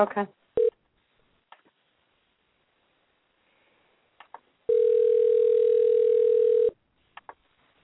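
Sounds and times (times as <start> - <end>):
speech: 0.0 - 0.4
ringback tone of a phone call waiting to be answered: 4.7 - 6.8.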